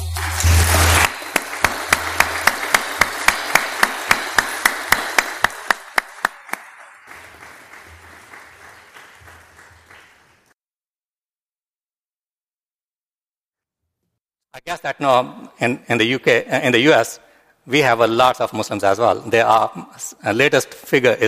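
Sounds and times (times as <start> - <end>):
audience applauding a guest preacher: 0.0 - 10.6
steady rhythmic clapping: 0.0 - 10.6
speech: 14.6 - 21.2.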